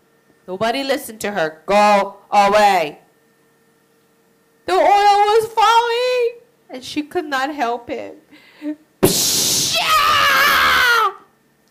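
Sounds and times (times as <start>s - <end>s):
speech: 0.5s - 3.0s, 4.7s - 6.0s, 6.7s - 10.8s
person screaming in pain: 9.1s - 11.2s.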